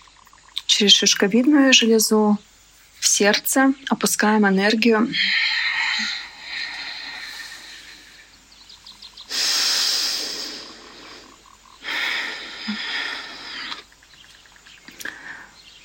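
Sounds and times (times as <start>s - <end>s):
faint chirps: 0.0s - 15.8s
speech: 0.8s - 6.1s
slow deep breathing exercise inhales and exhales: 5.1s - 14.0s, 15.0s - 15.7s.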